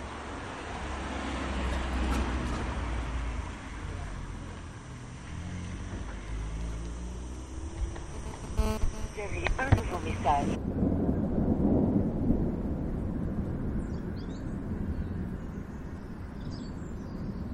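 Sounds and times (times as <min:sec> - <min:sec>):
car engine drone: 0:00.0 - 0:10.6
broadband hiss of wind and tires: 0:00.0 - 0:17.5
road rumble: 0:00.0 - 0:17.5.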